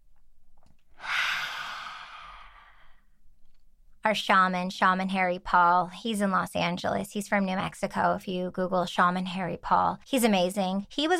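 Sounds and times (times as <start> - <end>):
deep human breath during guided breathing: 1.0 - 3.2
speech: 4.1 - 11.1.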